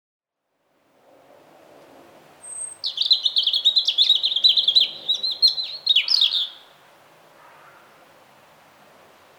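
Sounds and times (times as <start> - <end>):
European robin Erithacus rubecula singing: 2.4 - 6.8.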